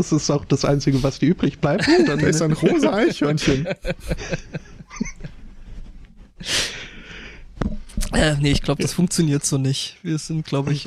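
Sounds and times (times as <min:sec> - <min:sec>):
speech: 0:00.0 - 0:05.1, 0:06.4 - 0:06.7, 0:08.1 - 0:10.8
laughter: 0:01.8 - 0:05.3
heavy breathing against a microphone: 0:03.4 - 0:07.6.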